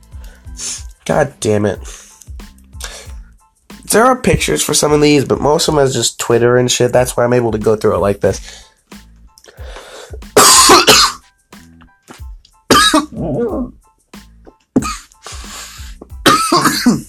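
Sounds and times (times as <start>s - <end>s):
speech: 0.6s - 2.0s, 3.9s - 8.7s
person coughing in harsh bursts: 10.4s - 11.2s, 12.7s - 13.7s, 14.8s - 15.1s, 16.2s - 17.0s
raspy throat clearing: 10.4s - 11.2s, 12.7s - 13.7s, 16.2s - 17.0s.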